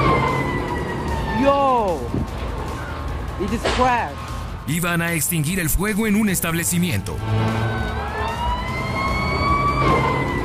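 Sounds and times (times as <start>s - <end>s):
fire truck siren wailing: 0.0s - 3.4s, 6.8s - 10.4s
constant low traffic rumble: 0.0s - 10.4s
speech: 3.4s - 7.8s.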